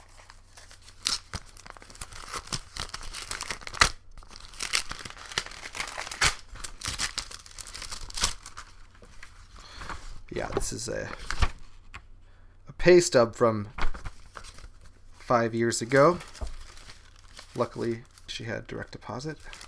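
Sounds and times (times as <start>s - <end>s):
plastic bag crinkling: 0.0s - 9.8s, 14.1s - 19.6s
speech: 10.4s - 11.4s, 12.8s - 13.8s, 15.3s - 16.3s, 17.6s - 19.6s.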